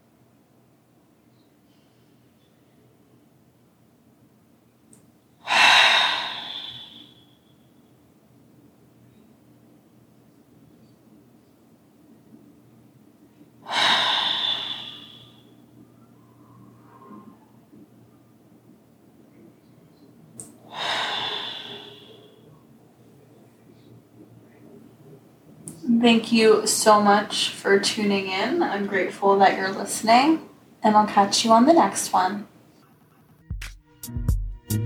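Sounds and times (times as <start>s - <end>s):
slow deep cleansing breaths: 5.4s - 7.4s, 13.6s - 15.6s, 20.6s - 22.6s
speech: 26.0s - 32.5s.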